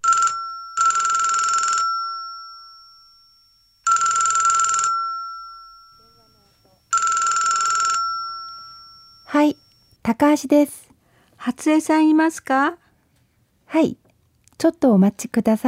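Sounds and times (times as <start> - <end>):
telephone ringing: 0.0 - 10.0
speech: 9.3 - 10.8, 11.4 - 12.8, 13.7 - 14.0, 14.6 - 15.6.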